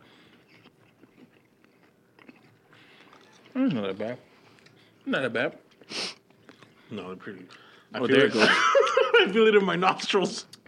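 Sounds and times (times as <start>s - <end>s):
chewing of strong mint gum with moist smacking: 0.2s - 4.9s
speech: 3.6s - 4.3s, 5.0s - 5.6s, 6.9s - 10.6s
laughter: 8.2s - 9.4s.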